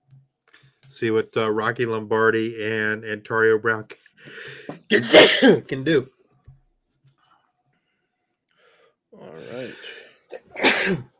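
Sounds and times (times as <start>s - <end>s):
speech: 0.9s - 6.2s, 10.8s - 11.1s
person sneezing: 4.7s - 5.6s, 9.4s - 11.1s.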